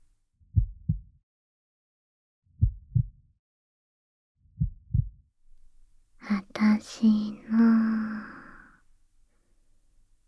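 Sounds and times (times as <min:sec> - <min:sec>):
mother's slow pounding heartbeat heard at her chest: 0:00.6 - 0:01.1, 0:02.6 - 0:03.2, 0:04.6 - 0:05.2
speech: 0:06.2 - 0:08.2.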